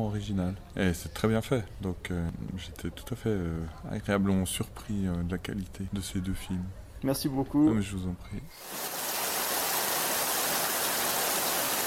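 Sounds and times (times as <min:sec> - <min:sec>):
speech: 0:00.0 - 0:08.9
steady rainfall: 0:08.6 - 0:11.8.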